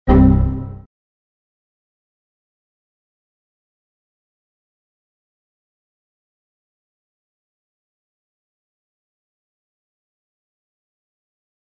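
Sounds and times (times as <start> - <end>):
error sound: 0.1 - 0.9.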